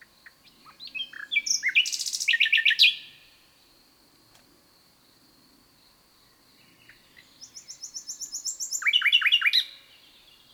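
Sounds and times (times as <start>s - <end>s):
common nightingale Luscinia megarhynchos singing: 0.3s - 3.2s, 6.7s - 10.5s.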